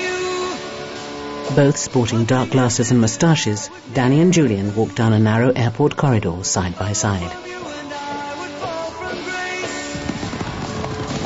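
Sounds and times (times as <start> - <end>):
music: 0.0 - 11.2
speech: 1.5 - 7.7
racehorses galloping around a racetrack: 9.2 - 11.2.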